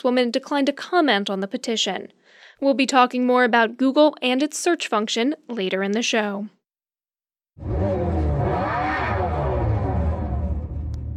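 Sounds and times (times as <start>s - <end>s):
speech: 0.0s - 6.6s, 7.6s - 7.9s
electric muscle car's synthesized engine sound revving: 7.6s - 11.1s.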